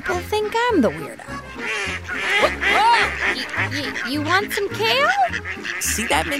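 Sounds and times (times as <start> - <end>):
duck quacking at a pond: 0.1 - 6.3
speech: 0.1 - 6.3
laughter: 2.2 - 5.4.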